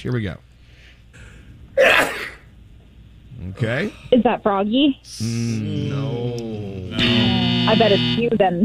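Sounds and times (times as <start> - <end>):
speech: 0.0 - 0.5, 3.4 - 8.6
person sneezing: 1.8 - 2.4.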